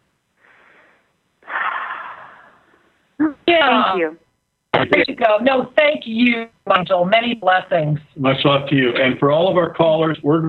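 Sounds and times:
deep breath taken slowly: 0:00.4 - 0:03.0
speech: 0:03.9 - 0:04.2, 0:04.8 - 0:10.4.

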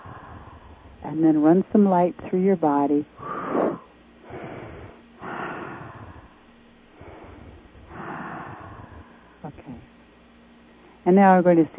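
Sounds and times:
slow deep breaths during a guided relaxation exercise: 0:00.0 - 0:01.0, 0:03.2 - 0:10.0
speech: 0:01.0 - 0:03.2, 0:11.1 - 0:11.7.

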